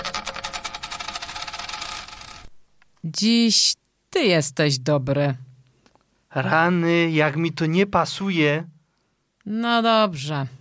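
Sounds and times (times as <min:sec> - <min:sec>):
tossed coin landing and spinning on a hard surface: 0:00.0 - 0:02.6
speech: 0:03.0 - 0:05.4, 0:06.3 - 0:08.8, 0:09.5 - 0:10.5.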